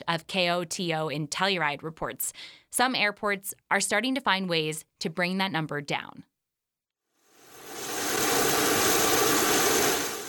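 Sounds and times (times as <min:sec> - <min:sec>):
speech: 0:00.1 - 0:06.3
jet engine roar from an aircraft refueling on a regional airport tarmac: 0:07.4 - 0:10.2.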